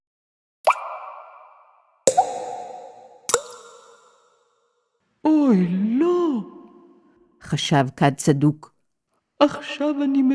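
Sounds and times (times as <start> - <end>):
water dripping from a cracked jar: 0.7 - 4.5
speech: 5.2 - 6.6, 7.5 - 8.7, 9.4 - 10.3.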